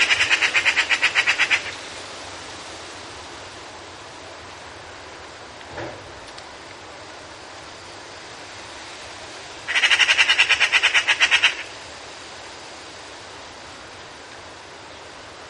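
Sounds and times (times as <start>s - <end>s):
Eurasian magpie harsh rapid rattling chatter: 0.0s - 1.8s, 9.7s - 11.7s
quiet hiss: 0.0s - 15.4s.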